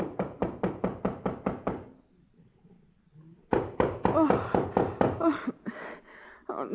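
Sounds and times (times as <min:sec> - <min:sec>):
knocking on a door: 0:00.0 - 0:01.9, 0:03.5 - 0:05.4.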